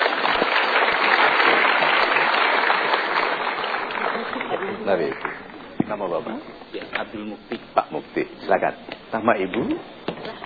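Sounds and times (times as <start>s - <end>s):
studio audience applause at a talk show: 0.0s - 5.6s
speech: 4.9s - 10.4s.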